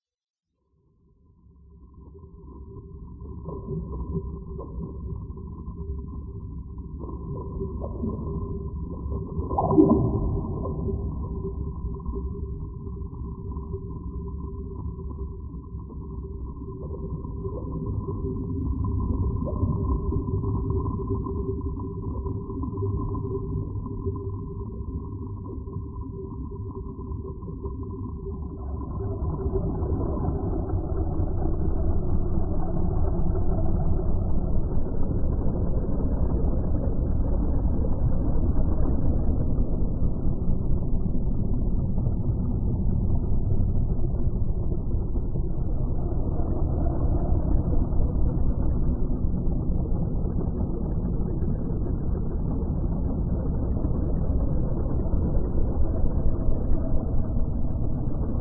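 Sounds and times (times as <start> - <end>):
underwater background ambience: 1.0 - 58.3.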